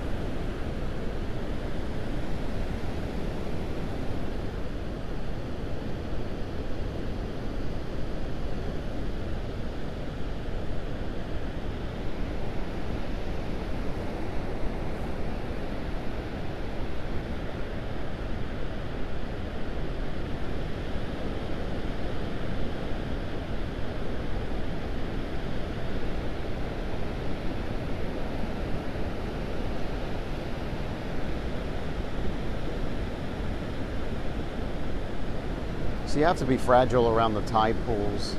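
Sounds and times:
wind: 0.0s - 38.3s
dull roar of ocean waves: 32.4s - 38.3s
speech: 36.2s - 38.3s.

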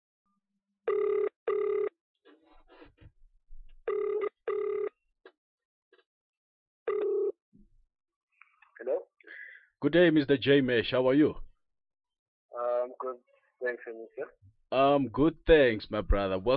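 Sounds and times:
telephone ringing for a phone call interview: 0.9s - 2.0s, 3.9s - 5.0s, 6.9s - 7.4s
speech: 9.8s - 11.5s, 13.7s - 16.5s.

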